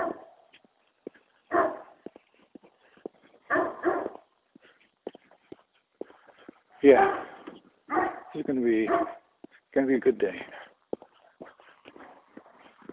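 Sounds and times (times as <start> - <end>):
dog barking in loud harsh bursts: 0.0 - 0.4, 1.5 - 2.0, 3.4 - 4.3, 6.8 - 9.3
speech: 6.8 - 7.2, 8.4 - 9.2, 9.8 - 10.6.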